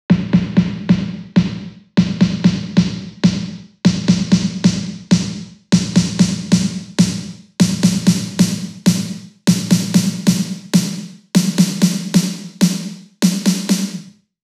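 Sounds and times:
salsa snare drum at 128 BPM: 0.1 - 14.2.

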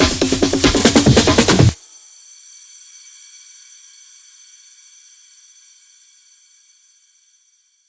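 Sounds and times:
140 BPM hands up and trance drum fills: 0.0 - 1.8.

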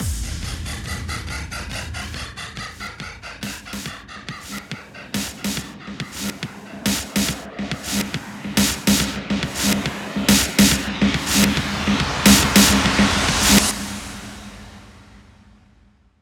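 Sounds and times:
reversed hands up and trance fills: 0.0 - 15.0.

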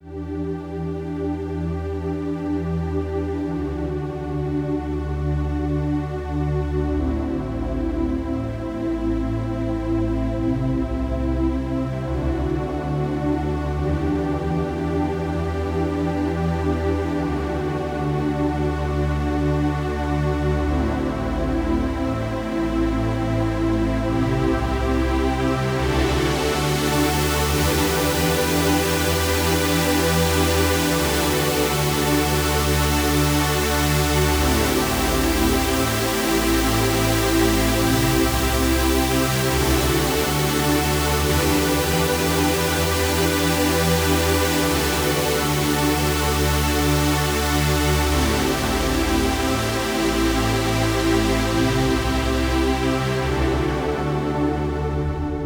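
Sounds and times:
full synth pad in E minor at 140 BPM: 0.0 - 55.4.

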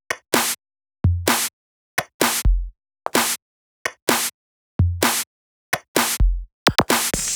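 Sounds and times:
drums: 0.3 - 3.4, 4.0 - 5.2, 5.8 - 7.3.

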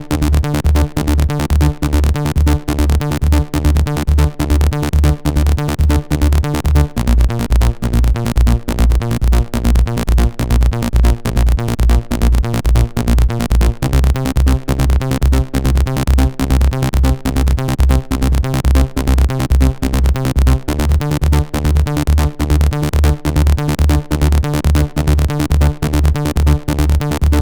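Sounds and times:
wet bassline in D minor at 140 BPM: 0.0 - 27.4.

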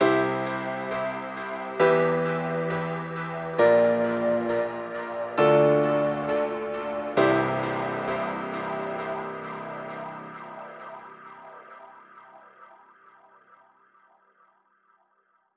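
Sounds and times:
piano outro in C major at 134 BPM: 0.0 - 11.2.

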